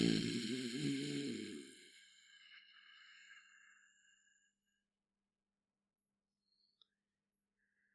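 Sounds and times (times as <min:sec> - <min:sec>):
person growling: 0:00.0 - 0:01.8.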